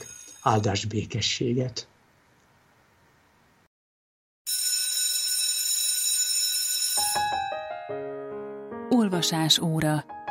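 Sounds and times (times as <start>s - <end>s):
loud metallic bell ringing: 0.0s - 0.7s, 4.5s - 7.9s
speech: 0.4s - 1.9s, 9.2s - 10.1s.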